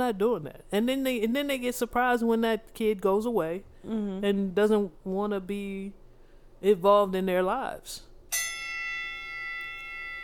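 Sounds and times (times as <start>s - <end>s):
speech: 0.0s - 6.0s, 6.6s - 8.5s
bell ringing: 8.3s - 10.2s.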